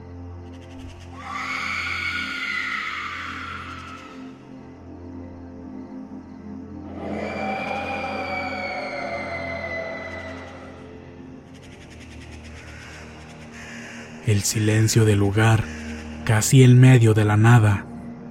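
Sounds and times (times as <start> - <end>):
distant woman screaming: 1.2 - 4.3, 6.9 - 10.8
speech: 14.3 - 17.9.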